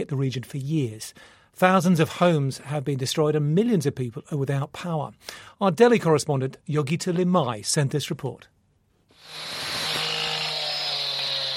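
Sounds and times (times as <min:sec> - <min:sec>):
speech: 0:00.0 - 0:08.6
motorized saw cutting through uprooted trees: 0:09.2 - 0:11.5.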